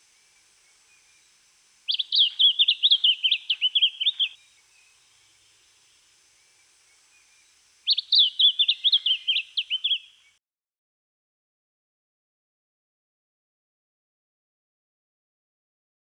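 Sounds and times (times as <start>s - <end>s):
lemon-bellied flycatcher singing rapid high jumbled chirping notes: 0.1s - 10.2s.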